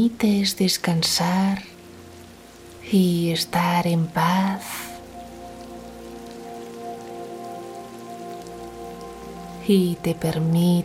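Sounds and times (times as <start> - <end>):
speech: 0.0 - 1.7, 2.9 - 4.9, 9.7 - 10.8
rain pattering: 0.0 - 10.8.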